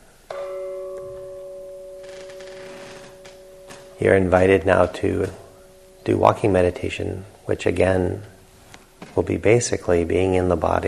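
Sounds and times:
meditation bell strike concluding a sitting meditation: 0.3 - 8.6
speech: 4.0 - 5.4, 6.1 - 8.3, 9.2 - 10.8.

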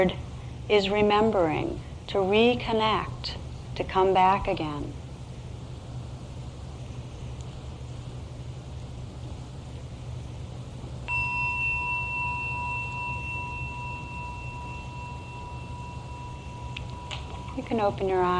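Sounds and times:
speech: 0.0 - 5.0, 17.6 - 18.3
steady low hum: 0.0 - 18.3
meditation gong struck and ringing: 11.1 - 18.3.

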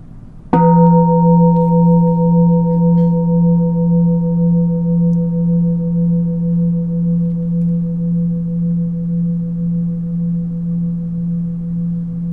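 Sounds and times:
meditation bell struck and ringing: 0.5 - 12.3.

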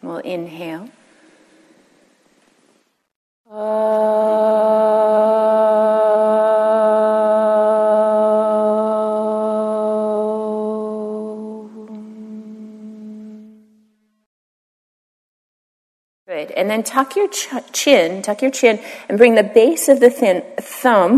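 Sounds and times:
speech: 0.1 - 1.0, 3.5 - 4.3, 16.6 - 21.1
group chanting the sacred Hindu sound Om at a yoga and dharma program: 3.5 - 13.8.

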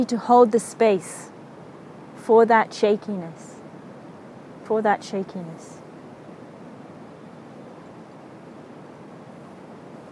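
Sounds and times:
speech: 0.0 - 1.4, 2.3 - 3.5, 4.7 - 5.8
steady rush of flowing river water: 0.0 - 10.0.

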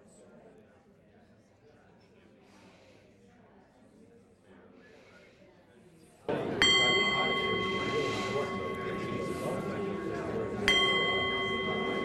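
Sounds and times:
low murmur of people chatting during a group discussion: 0.0 - 12.0
resonant bell struck: 6.4 - 12.0.

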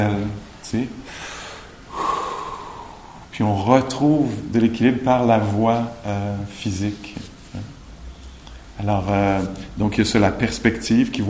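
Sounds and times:
speech: 0.0 - 1.3, 3.4 - 7.8, 8.8 - 11.2
deep sharp inhaled gasp: 1.1 - 3.3.

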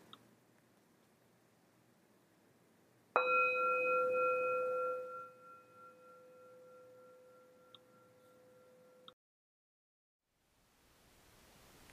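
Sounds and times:
faint hiss: 0.0 - 9.1, 10.2 - 11.9
single meditation bell ring: 3.2 - 9.1.

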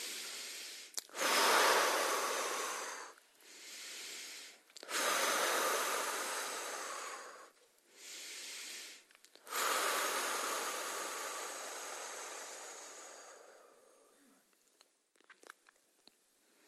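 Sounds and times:
slow deep breaths in and out: 0.0 - 14.5, 16.4 - 16.6.

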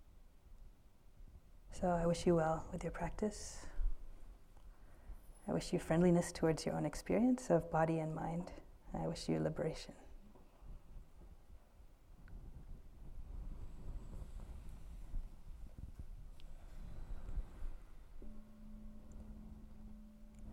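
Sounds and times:
speech: 1.8 - 3.7, 5.5 - 10.0
quiet rumbling background: 12.6 - 20.5
low meditation bell: 15.8 - 20.5.

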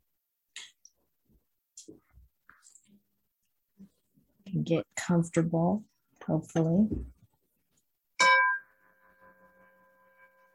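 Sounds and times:
speech: 4.6 - 7.2
meditation bell struck and ringing: 8.2 - 10.5.

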